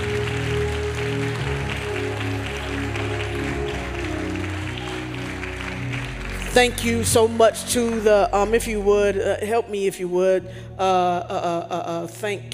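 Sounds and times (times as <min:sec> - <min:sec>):
crowd clapping in a large room: 0:00.0 - 0:08.8
sustained musical tones: 0:00.0 - 0:10.4
speech: 0:06.6 - 0:12.5.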